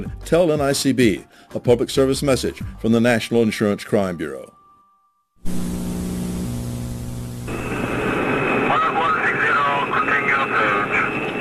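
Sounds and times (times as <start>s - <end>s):
speech: 0.0s - 4.6s, 5.4s - 5.8s
high sustained turbine whine: 5.4s - 11.3s
jet airliner engine roar approaching to land: 5.5s - 11.3s
voices: 8.7s - 11.3s.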